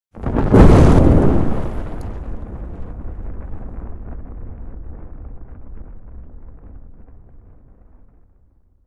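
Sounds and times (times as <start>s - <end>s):
big fire igniting: 0.2s - 2.8s.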